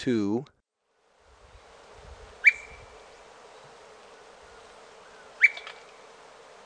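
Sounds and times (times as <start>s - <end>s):
Brown-crested flycatcher whip calls with brief whistles in Ecuador: 2.4s - 3.1s, 5.0s - 6.1s.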